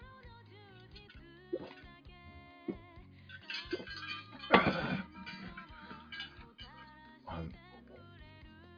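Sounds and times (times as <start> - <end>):
tonal music: 0.0 - 8.7
glasses of shochu mixed with water clinking in a toast: 0.9 - 1.9, 2.7 - 7.0.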